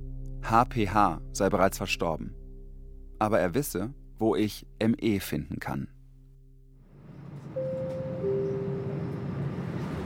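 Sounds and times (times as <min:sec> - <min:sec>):
speech: 0:00.4 - 0:02.4, 0:03.2 - 0:06.0
train rolling on rails from Passau to Deggendorf: 0:07.0 - 0:10.0.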